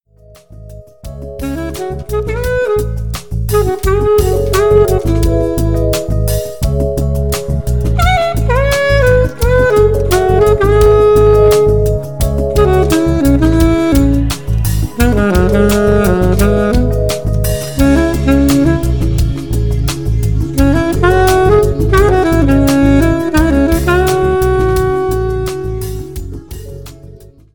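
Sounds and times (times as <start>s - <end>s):
saxophonist playing lounge music: 1.1s - 26.5s.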